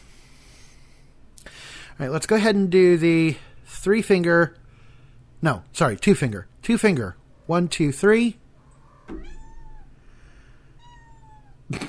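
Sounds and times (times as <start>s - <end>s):
speech: 2.0s - 4.6s, 5.4s - 8.4s, 9.1s - 9.3s
cat meowing: 8.8s - 10.0s, 10.8s - 11.6s.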